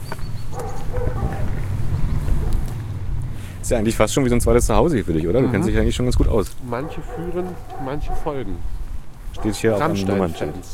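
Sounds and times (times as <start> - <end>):
dog of a local electronics shop barking and yipping: 0.5 - 1.6, 6.7 - 8.6, 9.4 - 10.7
steady low rumble: 0.6 - 6.4
speech: 3.7 - 8.8, 9.4 - 10.7.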